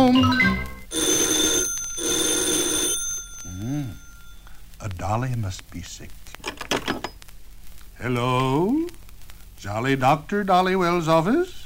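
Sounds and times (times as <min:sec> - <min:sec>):
telephone bell ringing: 0:00.4 - 0:04.4
speech: 0:05.1 - 0:06.2, 0:08.0 - 0:09.0, 0:09.6 - 0:11.6.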